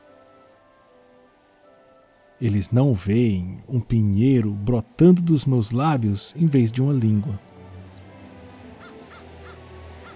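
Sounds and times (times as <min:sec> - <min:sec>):
speech: 0:02.4 - 0:07.5
crow cawing: 0:08.8 - 0:10.1.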